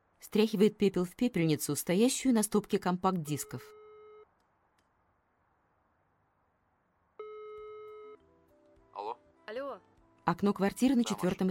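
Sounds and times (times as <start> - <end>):
speech: 0.2 - 3.8, 10.3 - 11.4
electronic beeps from a cordless phone handset dialing a number: 7.2 - 8.2.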